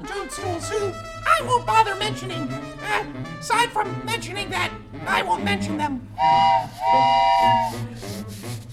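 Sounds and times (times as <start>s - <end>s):
speech: 0.3s - 8.1s
steam train whistle blasts: 6.2s - 8.0s
steam engine chuffing and hissing as train pulls away: 6.2s - 8.3s.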